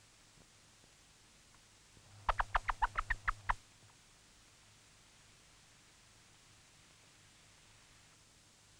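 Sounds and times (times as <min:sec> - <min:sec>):
hen's food call to chicks: 0:02.2 - 0:03.6.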